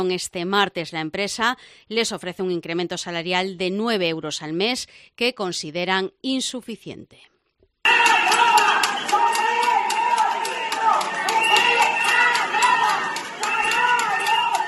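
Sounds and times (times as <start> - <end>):
speech: 0.0 - 8.2
bank workers' protest rally crowd voices outside Abanca on Ruanova: 7.9 - 14.6
sharp percussive hits: 7.9 - 14.6.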